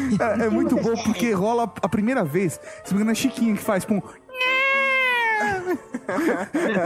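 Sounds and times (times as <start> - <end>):
speech: 0.1 - 4.2, 5.4 - 6.8
person imitating a cat meowing: 4.3 - 5.6
laughter: 5.4 - 6.8.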